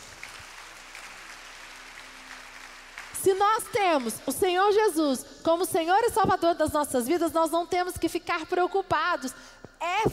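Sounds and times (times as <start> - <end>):
congregation applauding in a reverberant room: 0.0 - 4.5
speech: 3.2 - 10.1.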